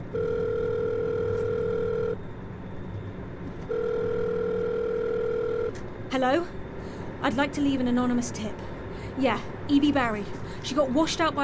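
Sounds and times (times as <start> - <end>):
low rumbling hum: 0.0 - 11.4
phone ringback tone through the line: 0.1 - 2.2, 3.7 - 5.8
speech: 6.2 - 6.6, 7.2 - 11.4.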